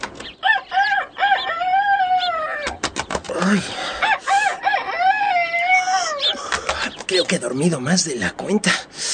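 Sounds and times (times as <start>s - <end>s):
rooster crowing cock-a-doodle-doo: 0.4s - 2.8s, 3.9s - 6.4s
speech: 3.4s - 3.8s, 7.3s - 9.1s.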